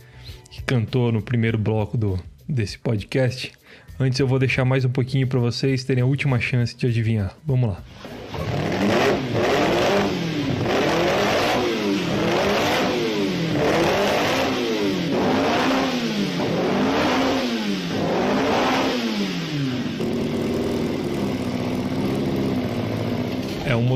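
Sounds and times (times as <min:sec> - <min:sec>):
speech: 0:00.7 - 0:08.2
2-liter Alfa Romeo V8 racing car engine revving: 0:07.9 - 0:23.9.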